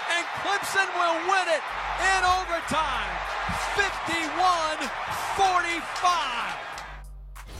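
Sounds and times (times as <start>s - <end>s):
people shouting and whooping excitedly: 0.0s - 7.0s
speech: 0.4s - 6.7s
microphone bumped and knocked during celebrating radio call: 3.4s - 3.8s.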